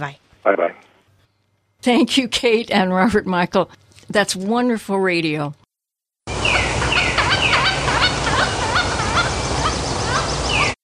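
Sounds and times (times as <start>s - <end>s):
speech: 0.0s - 0.9s, 1.8s - 5.6s
pileated woodpecker calling in rapid ringing notes and down-slurred cries: 6.4s - 10.8s.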